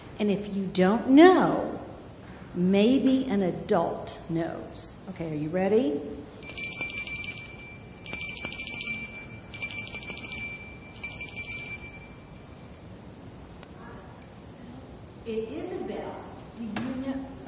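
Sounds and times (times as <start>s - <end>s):
speech: 0.2s - 1.8s, 2.6s - 6.3s
bells ringing with rapid shrill trilling: 6.4s - 12.9s.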